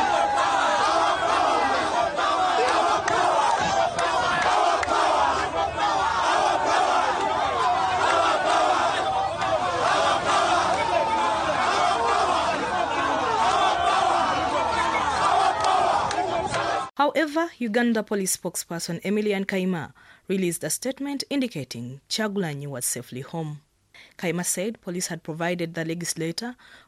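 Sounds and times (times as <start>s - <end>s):
large crowd chanting slogans in unison: 0.0s - 16.9s
speech: 17.1s - 26.8s.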